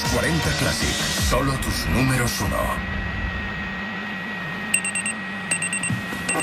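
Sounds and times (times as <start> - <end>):
speech: 0.1 - 2.9
low steady hum: 1.3 - 6.4
electronic alarm clock beeping: 4.7 - 6.4.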